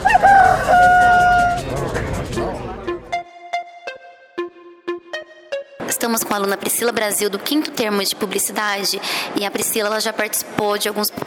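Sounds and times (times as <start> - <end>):
rooster crowing: 0.0 - 1.6
speech: 6.1 - 11.2.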